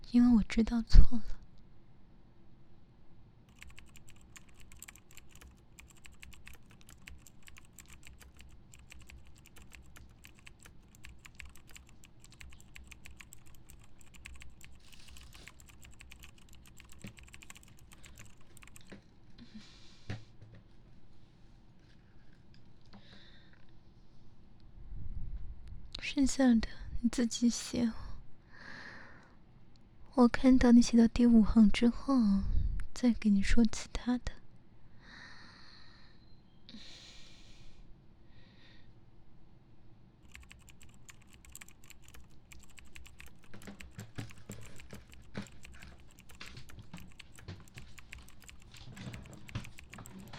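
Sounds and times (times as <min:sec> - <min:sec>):
low hum: 0:00.0 - 0:50.3
speech: 0:00.1 - 0:01.4, 0:26.3 - 0:28.0, 0:30.2 - 0:34.4
typing notes on a computer keyboard: 0:03.5 - 0:19.0, 0:40.2 - 0:50.3.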